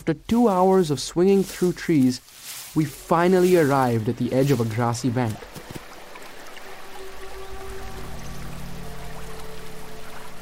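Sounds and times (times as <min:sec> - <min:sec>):
speech: 0:00.0 - 0:05.6
waterfall rushing water: 0:00.0 - 0:10.4
low droning hum: 0:06.7 - 0:10.4.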